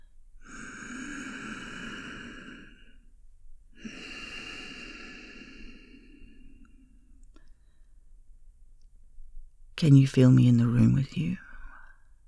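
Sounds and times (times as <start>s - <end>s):
slow breathing against the microphone: 0.4s - 8.2s
speech: 9.8s - 11.4s.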